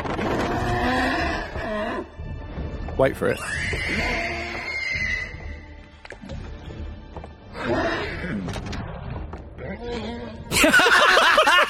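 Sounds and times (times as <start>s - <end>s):
horse whinnying: 0.2s - 2.1s, 3.4s - 5.7s
speech: 3.0s - 4.2s
laughter: 10.5s - 11.6s.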